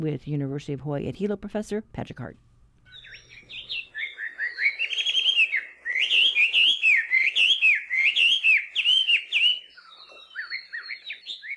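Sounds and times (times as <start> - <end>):
speech: 0.0 - 3.8
melodious laughing thrush singing rapid varied whistled phrases: 2.9 - 11.5.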